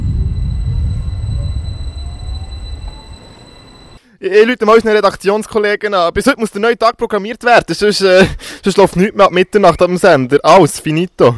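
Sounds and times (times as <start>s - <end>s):
train departing from a station platform: 0.0s - 4.0s
faint squealing tones: 0.2s - 4.0s
speech: 4.2s - 11.3s.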